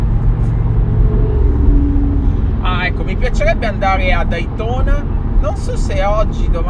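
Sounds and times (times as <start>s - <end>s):
motorcycle engine rumbling past: 0.0s - 5.4s
speech: 3.2s - 6.6s.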